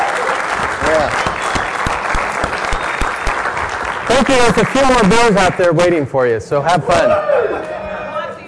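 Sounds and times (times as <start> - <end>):
room full of people applauding: 0.0 - 6.0
speech: 4.1 - 7.3.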